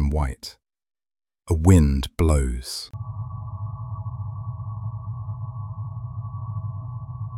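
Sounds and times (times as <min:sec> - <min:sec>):
speech: 0:00.1 - 0:00.6, 0:01.5 - 0:03.1
server humming as it powers on: 0:03.0 - 0:07.3.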